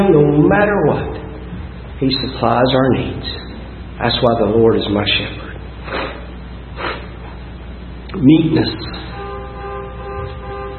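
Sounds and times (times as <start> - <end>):
speech: 0.0 - 1.3, 2.0 - 3.4, 4.0 - 6.0, 8.2 - 9.1
car horn blast: 9.0 - 10.7.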